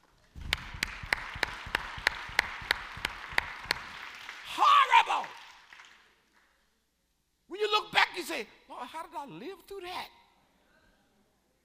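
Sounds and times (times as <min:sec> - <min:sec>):
congregation clapping in unison in a large room: 0:00.0 - 0:06.6
speech: 0:08.4 - 0:10.2.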